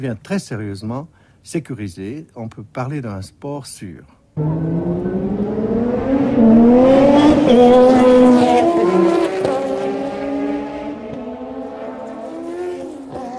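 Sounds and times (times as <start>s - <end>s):
speech: 0.0s - 5.4s, 6.4s - 9.2s
Formula 1 race cars passing at moderate speed with cold engines: 4.4s - 13.3s.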